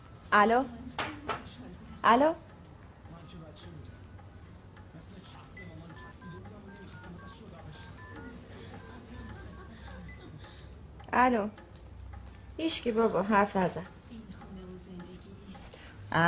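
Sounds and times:
noisy background: 0.0 - 16.2
speech: 0.3 - 0.8, 2.0 - 2.4, 11.2 - 11.6, 12.6 - 14.0
touch-tone keypad beeps as a telephone number is dialed: 5.5 - 10.2
laughter: 7.9 - 10.8.

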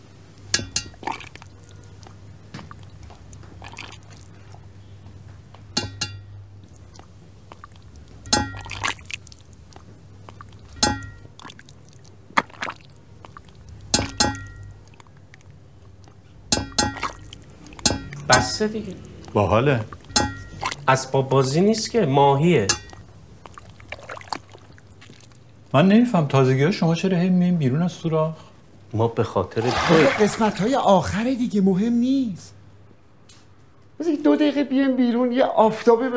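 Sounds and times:
low steady hum: 0.0 - 34.0
sharp ringing taps on a water-filled glass jug: 5.7 - 6.4, 8.3 - 8.7, 10.8 - 11.3, 13.9 - 14.7, 16.5 - 17.2, 17.8 - 18.5
speech: 18.6 - 20.0, 20.9 - 22.8, 25.7 - 32.6, 34.2 - 36.1.

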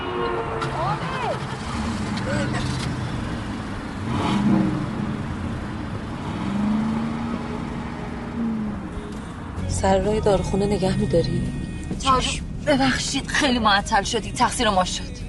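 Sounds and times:
car engine revving and pulling away: 0.0 - 15.0
steady street traffic noise: 0.0 - 15.2
speech: 9.8 - 15.2.

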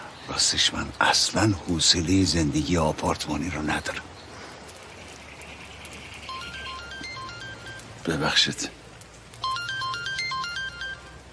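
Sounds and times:
speech: 0.3 - 4.1, 8.0 - 8.8
phone ringtone electronic melody: 6.3 - 7.9, 9.4 - 11.3.

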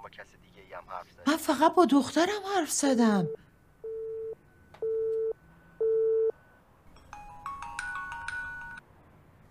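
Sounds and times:
speech: 0.1 - 3.5
outgoing phone call ringing tone without an answer: 3.1 - 8.8
brief brighter melodic tone sequence on the phone line: 7.0 - 8.8.

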